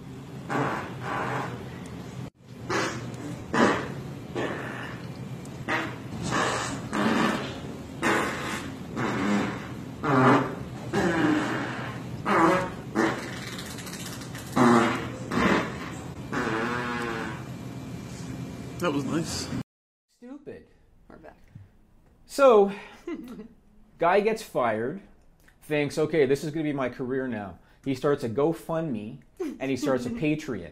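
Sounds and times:
loud buzzy fart sounds from a video clip: 0.4s - 1.8s, 2.6s - 17.5s
speech: 18.9s - 19.6s, 22.4s - 23.4s, 24.0s - 25.1s, 25.7s - 30.7s.

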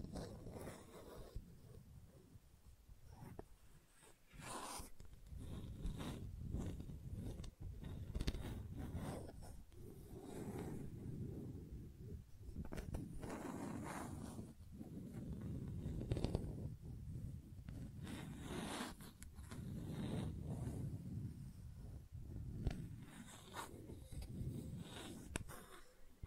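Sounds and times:
gentle scratching: 0.0s - 26.2s.

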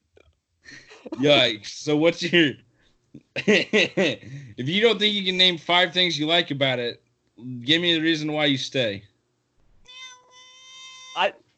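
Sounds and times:
laughter: 0.7s - 2.5s, 3.2s - 5.5s
speech: 1.1s - 9.1s, 11.2s - 11.4s
cat meowing into the microphone: 9.9s - 11.3s.

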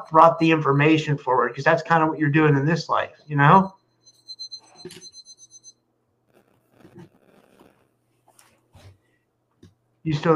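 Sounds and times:
speech: 0.0s - 3.8s, 4.8s - 5.1s, 10.0s - 10.3s
new alarm clock beeping: 0.0s - 5.8s.

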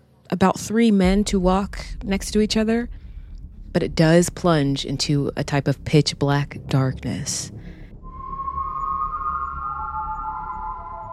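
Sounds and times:
speech: 0.3s - 3.0s, 3.7s - 7.6s
low constant rumble: 0.3s - 8.2s
eerie whistling tone echoing from an abandoned coal mine shaft: 7.4s - 11.1s.

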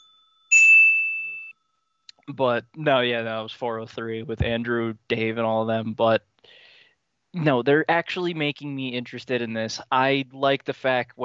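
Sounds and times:
single bright bell strike: 0.0s - 1.5s
speech: 2.3s - 6.6s, 7.3s - 11.2s.

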